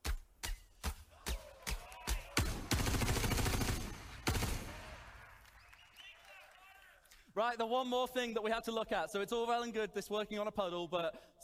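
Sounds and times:
gunfire from bullets fired in a 3D video game demo: 0:00.8 - 0:05.4
speech: 0:07.4 - 0:11.4.

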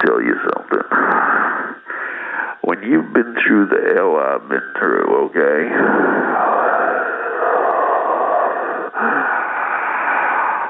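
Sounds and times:
wheezing, hissing breath from damaged lung: 0:01.0 - 0:02.6, 0:05.7 - 0:10.6
speech: 0:02.8 - 0:06.6.

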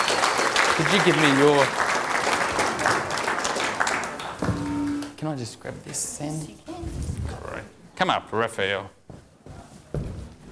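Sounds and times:
audience applause: 0:00.0 - 0:05.1
speech: 0:00.8 - 0:01.9, 0:05.3 - 0:09.0
brief tonal hum: 0:04.4 - 0:05.2.

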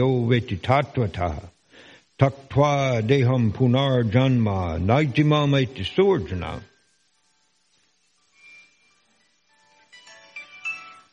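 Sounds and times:
speech: 0:00.0 - 0:01.5, 0:02.2 - 0:06.7
smartphone ringtone with bright electronic tones: 0:08.3 - 0:11.1.

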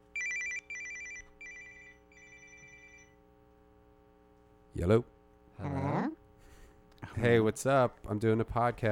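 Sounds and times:
phone ringing with electronic trill: 0:00.1 - 0:03.2
speech: 0:04.8 - 0:06.0, 0:07.2 - 0:08.9.

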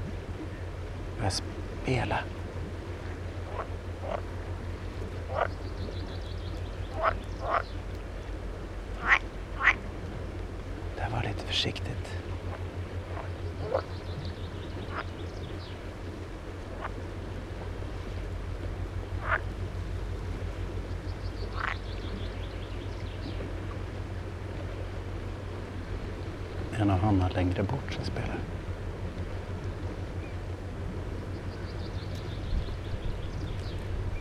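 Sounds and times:
pool frogs calling from a pond on Örskär: 0:00.0 - 0:34.1
steady low hum of noise: 0:00.0 - 0:34.1
speech: 0:01.2 - 0:02.4, 0:11.5 - 0:12.3, 0:27.2 - 0:28.6.

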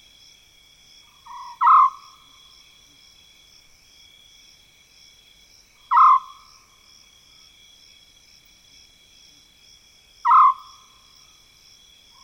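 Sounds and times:
insect drone in mopane woodland in Zambia: 0:00.0 - 0:12.2
African scops owl trilled calls in mopane woodland in Zambia: 0:01.2 - 0:02.2, 0:05.9 - 0:06.4, 0:10.2 - 0:10.8.

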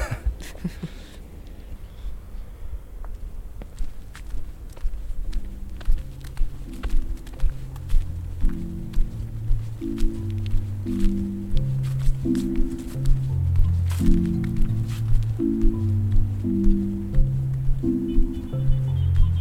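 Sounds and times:
footsteps of people walking outdoors: 0:02.9 - 0:19.3
low tuneful melody: 0:05.1 - 0:19.3.

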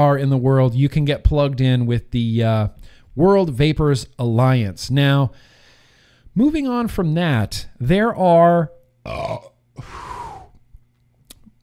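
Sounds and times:
speech: 0:00.0 - 0:05.5, 0:06.4 - 0:10.1
person burping: 0:09.0 - 0:10.6.

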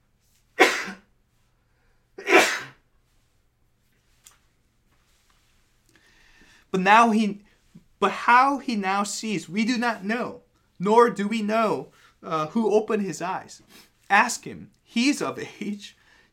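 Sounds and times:
person sneezing: 0:00.6 - 0:01.1, 0:02.2 - 0:02.8
speech: 0:06.7 - 0:07.4, 0:08.0 - 0:16.0.

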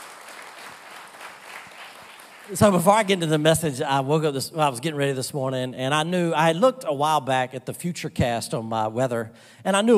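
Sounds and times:
audience applause: 0:00.0 - 0:03.4
speech: 0:02.5 - 0:09.9.

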